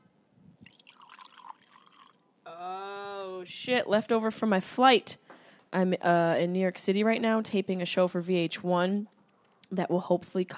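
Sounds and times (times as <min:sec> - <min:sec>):
wine pouring from a twist-off bottle into a glass: 0:00.5 - 0:02.3
speech: 0:03.4 - 0:10.5.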